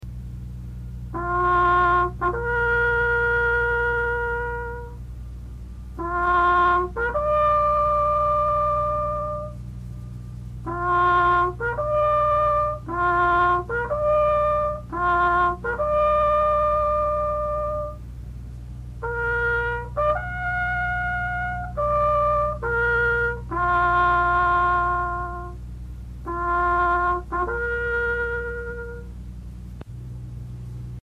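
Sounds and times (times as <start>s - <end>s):
bugle call: 1.1s - 5.0s, 6.0s - 9.6s, 10.6s - 18.0s, 19.0s - 25.6s, 26.2s - 29.2s.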